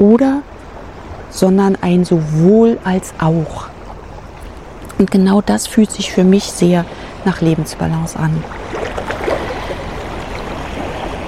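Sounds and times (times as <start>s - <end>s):
speech: 0.0s - 0.6s, 1.3s - 3.7s, 5.0s - 8.8s
sea water washing: 0.0s - 11.2s
water gurgles and splashes by the sea: 2.1s - 5.0s, 6.1s - 11.2s.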